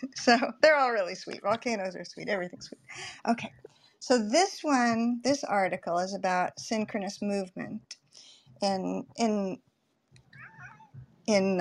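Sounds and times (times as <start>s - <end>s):
speech: 0.0s - 8.0s, 8.6s - 9.7s, 11.3s - 11.5s
pet cat meowing: 10.4s - 10.9s.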